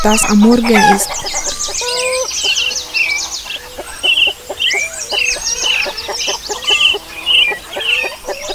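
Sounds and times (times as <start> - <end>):
speech: 0.0 - 1.4
busy higher chirps: 0.0 - 2.0, 8.2 - 8.5
flock of chickens clucking in Eritrea in the morning: 0.0 - 8.5.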